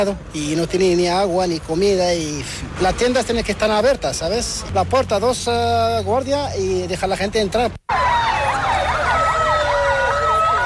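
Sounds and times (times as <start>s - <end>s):
speech: 0.0s - 8.3s
street traffic with military vehicles in Ceuta: 0.0s - 10.6s
police sirens wailing in city street: 7.9s - 10.6s.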